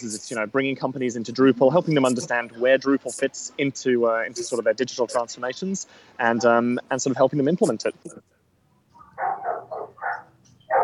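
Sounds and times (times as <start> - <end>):
speech: 0.0 - 8.3
dogs barking in sharp yelps: 9.0 - 10.8.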